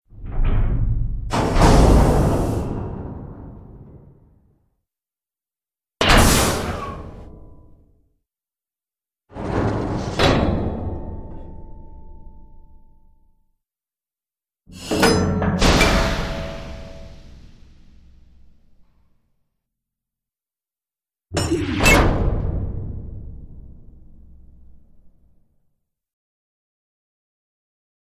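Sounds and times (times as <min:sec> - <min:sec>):
massive pneumatic door closing: 0:00.1 - 0:04.5, 0:06.0 - 0:07.6, 0:09.4 - 0:11.7, 0:14.8 - 0:18.5, 0:21.4 - 0:24.9.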